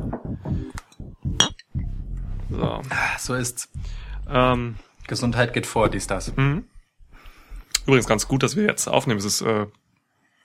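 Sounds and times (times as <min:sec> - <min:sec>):
glasses clinking in a toast: 0:01.4 - 0:01.7
speech: 0:02.5 - 0:06.7, 0:07.9 - 0:09.8.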